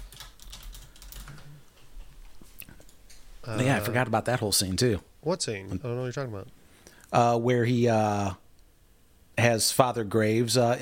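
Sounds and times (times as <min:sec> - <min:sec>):
typing on a mechanical keyboard: 0:00.0 - 0:01.6
speech: 0:03.4 - 0:08.4, 0:09.4 - 0:10.8.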